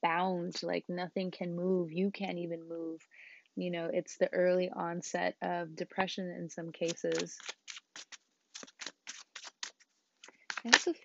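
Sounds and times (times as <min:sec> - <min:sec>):
speech: 0:00.0 - 0:08.2, 0:10.6 - 0:11.0
tarot cards being shuffled: 0:06.8 - 0:11.0.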